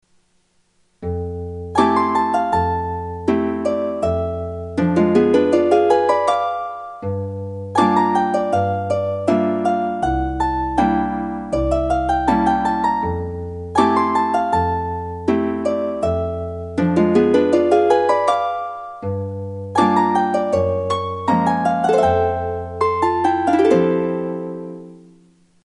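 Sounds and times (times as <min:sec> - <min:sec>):
opening jazz music: 0:01.2 - 0:25.0.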